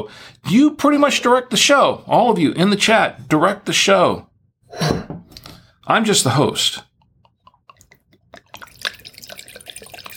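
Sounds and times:
speech: 0.0 - 5.0, 5.9 - 6.9
drips: 6.9 - 10.1
wine pouring into a glass: 7.3 - 10.1.

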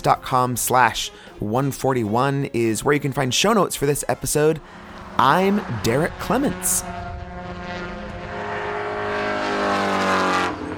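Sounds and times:
speech: 0.0 - 7.1
high-revving race car engine roaring at Sonoma Raceway in California: 3.7 - 10.7.

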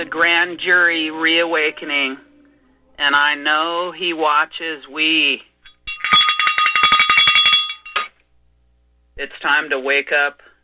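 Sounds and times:
speech: 0.0 - 2.3, 3.0 - 5.5, 9.2 - 10.5
small sheep bell shaken rapidly: 5.7 - 8.2.

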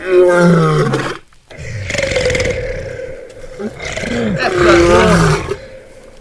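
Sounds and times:
escaped lion roaring: 0.0 - 6.1.

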